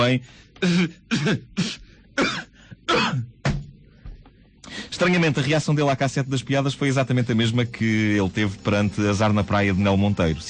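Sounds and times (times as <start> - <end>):
speech: 0.0 - 3.3, 5.0 - 10.4
person faking a throaty coughing fit: 0.6 - 3.4.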